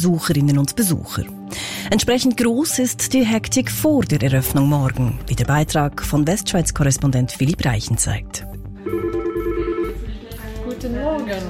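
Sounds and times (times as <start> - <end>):
speech: 0.0 - 8.6
telephones ringing in a busy call centre of a gymnastics festival: 8.8 - 10.0.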